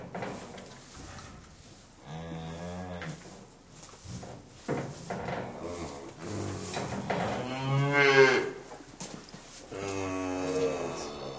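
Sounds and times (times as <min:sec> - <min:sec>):
rustling: 0:00.0 - 0:11.0
cow mooing: 0:05.7 - 0:08.6, 0:09.7 - 0:11.3.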